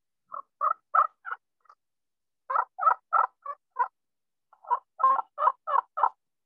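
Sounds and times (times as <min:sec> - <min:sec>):
petrified wood friction turkey call imitating hen yelps: 0:00.3 - 0:01.4, 0:02.5 - 0:03.9, 0:04.5 - 0:06.2.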